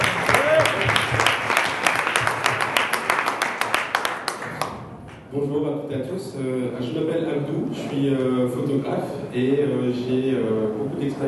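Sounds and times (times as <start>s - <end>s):
audience applauding with dense steady clapping: 0.0s - 4.8s
speech: 5.4s - 11.2s.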